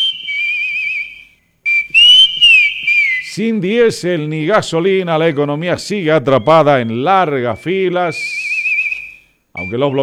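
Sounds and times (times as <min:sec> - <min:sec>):
person whistling a wavering sustained tune: 0:00.0 - 0:03.3, 0:08.2 - 0:10.0
speech: 0:03.4 - 0:08.4, 0:09.6 - 0:10.0.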